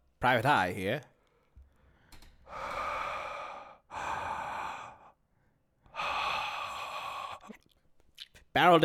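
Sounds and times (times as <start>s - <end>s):
speech: 0.2s - 1.1s, 8.6s - 8.8s
person breathing heavily into a phone: 1.3s - 7.7s.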